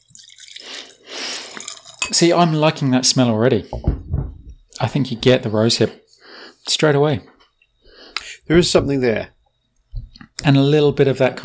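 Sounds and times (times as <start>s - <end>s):
drink for tasting poured neat into a glass: 0.0s - 2.3s
speech: 2.1s - 4.0s, 4.8s - 6.0s, 6.7s - 7.3s, 8.5s - 9.4s, 10.4s - 11.4s.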